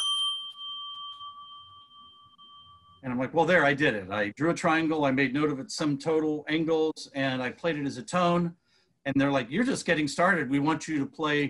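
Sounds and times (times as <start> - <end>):
triangle chime from a chime set made in Australia struck once: 0.0 - 3.2
speech: 3.0 - 11.4.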